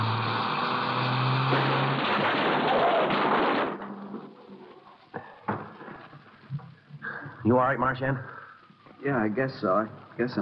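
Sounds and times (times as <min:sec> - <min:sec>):
low car engine drone: 0:00.0 - 0:02.1
car deliberately driven into another car: 0:00.0 - 0:04.8
settling debris clanking and rattling: 0:01.5 - 0:04.6
speech: 0:07.5 - 0:08.4, 0:09.0 - 0:10.4.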